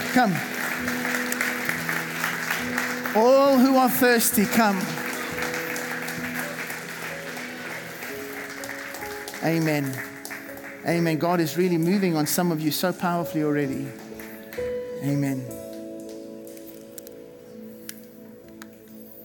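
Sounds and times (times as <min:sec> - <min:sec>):
audience applauding: 0:00.0 - 0:16.8
speech: 0:00.2 - 0:01.2, 0:03.1 - 0:05.0, 0:09.4 - 0:10.1, 0:10.8 - 0:14.0, 0:15.0 - 0:15.5.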